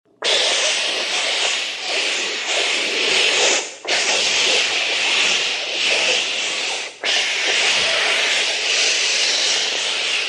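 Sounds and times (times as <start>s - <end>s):
foam extinguishing fire: 0.3s - 10.2s.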